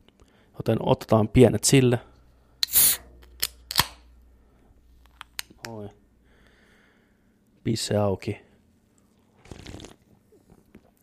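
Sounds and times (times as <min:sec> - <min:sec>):
speech: 0:00.6 - 0:02.1, 0:07.6 - 0:08.5
slurping sip from a drink: 0:09.4 - 0:11.0.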